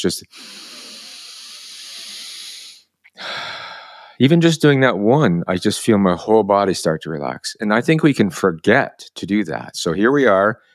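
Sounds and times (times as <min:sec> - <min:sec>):
speech: 0:00.0 - 0:00.8, 0:04.2 - 0:10.7
deep calming breath exhale: 0:00.3 - 0:04.2.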